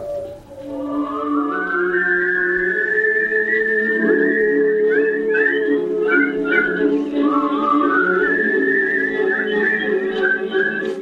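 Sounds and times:
woman whistling a slow low-pitched tune: 0.0 - 10.9.

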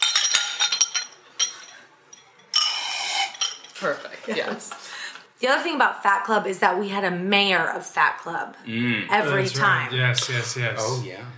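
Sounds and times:
glasses clinking in a toast: 0.0 - 4.0
speech: 3.8 - 4.8, 5.4 - 11.3.

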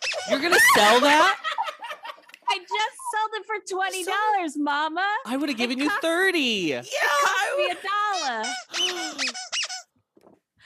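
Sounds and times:
giant furry pink bird hand puppet squeaking: 0.0 - 1.0, 8.0 - 10.0
speech: 0.2 - 1.4, 2.6 - 9.4
laughter: 0.3 - 3.2, 5.3 - 6.3.

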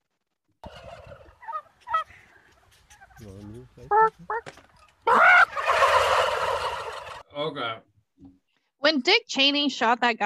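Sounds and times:
turkey gobbling: 0.6 - 7.3
speech: 3.2 - 4.7, 7.4 - 10.2.

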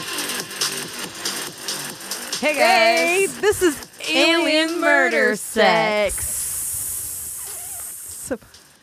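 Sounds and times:
speech: 2.4 - 6.3, 8.3 - 8.5
person making a snake-like hiss: 6.2 - 8.5.

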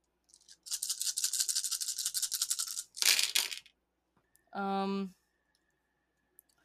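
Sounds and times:
dice rattling as if shaken in a hand: 0.3 - 3.8.

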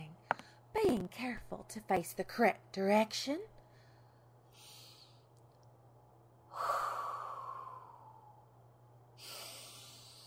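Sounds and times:
speech: 0.9 - 3.5
slow controlled breathing: 3.6 - 5.4, 6.5 - 8.6, 9.2 - 10.2.

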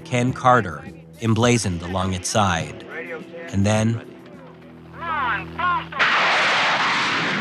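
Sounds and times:
speech: 0.1 - 2.8, 3.5 - 4.1
rocket car blasting off up a ramp: 6.0 - 7.4.

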